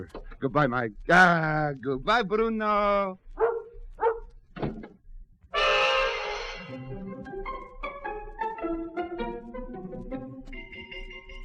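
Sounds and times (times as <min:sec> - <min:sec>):
speech: 0:00.0 - 0:03.2
130-pound Alsatian dog barking: 0:03.4 - 0:04.3
sharp noisy crash: 0:05.6 - 0:06.8
music playing: 0:05.6 - 0:11.4.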